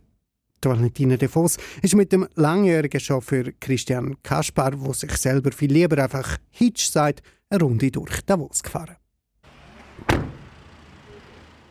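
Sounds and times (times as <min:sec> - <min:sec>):
speech: 0:00.6 - 0:09.0
modern VW van door slammed shut by its chauffeur in Davos: 0:09.9 - 0:10.6.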